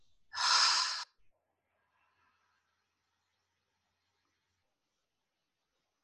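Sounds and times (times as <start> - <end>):
single deep breath drawn in through the nose: 0.4 - 1.0.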